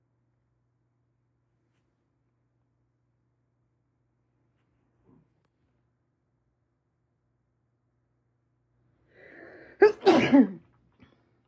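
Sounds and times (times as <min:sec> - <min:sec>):
soft drawn-in breath before a sneeze: 0:09.0 - 0:09.9
person sneezing loudly: 0:09.4 - 0:10.7.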